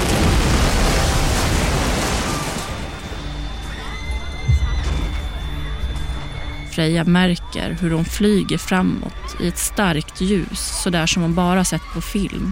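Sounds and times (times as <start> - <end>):
loud explosion from a terror attack at Manchester Arena: 0.0 - 3.2
thin high-pitched ringing tone: 2.8 - 10.2
speech: 6.8 - 12.5.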